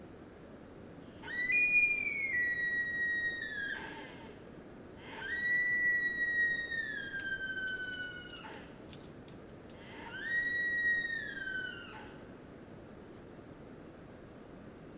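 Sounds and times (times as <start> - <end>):
deer: 1.0 - 4.4, 5.0 - 9.0, 9.7 - 12.4.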